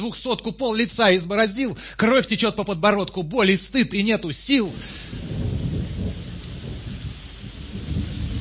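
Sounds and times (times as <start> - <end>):
speech: 0.0 - 5.2
steady dense rain pouring outside: 0.0 - 8.3
low thunder rumble: 3.3 - 8.3.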